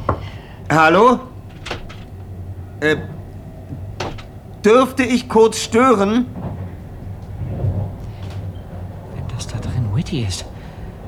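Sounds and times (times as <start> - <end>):
low hum: 0.0 - 11.0
speech: 0.7 - 1.3, 2.8 - 3.2, 4.6 - 6.4, 10.1 - 10.5
soft knocking on a door: 1.5 - 2.0, 4.0 - 4.3.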